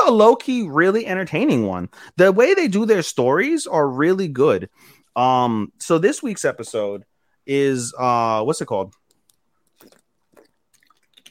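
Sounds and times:
speech: 0.1 - 9.0
person taking a swig of water and gulping: 9.0 - 11.2.

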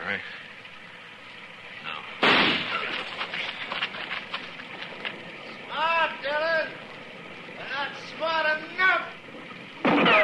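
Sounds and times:
speech: 0.1 - 0.5
single gunshot fired at a tree: 2.2 - 2.9, 9.8 - 10.2
crackling patter after a gunshot: 2.6 - 10.2.

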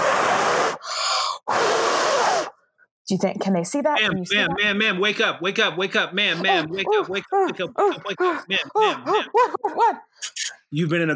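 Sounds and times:
loud heavy breathing: 0.0 - 2.7, 6.2 - 10.3
strained wheezy whistling breath: 0.0 - 2.8
speech: 3.1 - 11.1
laughter: 4.0 - 5.0, 6.1 - 10.1.

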